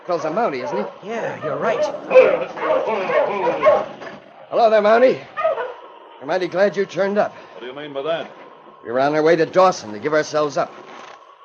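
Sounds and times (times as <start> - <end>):
speech: 0.1 - 5.3, 6.2 - 10.8
husky barking and growling aggressively: 0.6 - 4.2, 5.4 - 5.8.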